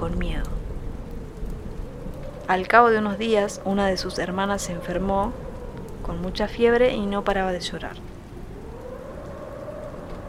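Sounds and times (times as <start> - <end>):
speech: 0.0 - 0.6, 2.5 - 5.4, 6.1 - 8.1
low rumbling undertone: 0.0 - 10.2
rain pattering: 0.0 - 10.2.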